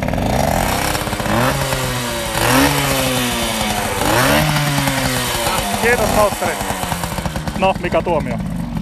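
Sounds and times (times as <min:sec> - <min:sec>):
engine revving through raspy aftermarket exhaust: 0:00.0 - 0:08.7
speech: 0:05.9 - 0:06.7, 0:07.6 - 0:08.5.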